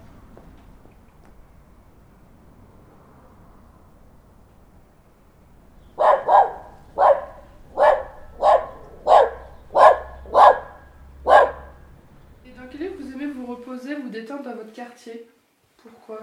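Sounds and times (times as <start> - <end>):
low hum: 0.0 - 13.7
dog barking: 1.4 - 13.2
speech: 14.0 - 16.2.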